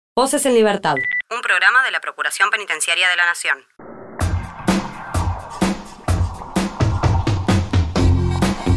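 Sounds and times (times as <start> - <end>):
speech: 0.2 - 3.9
song with punchy drum beat, thick bass and layered instruments: 4.2 - 8.7.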